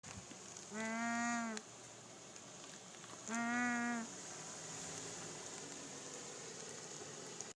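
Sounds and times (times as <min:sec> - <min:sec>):
Branta sandvicensis calling: 0:00.7 - 0:01.6, 0:03.3 - 0:04.1.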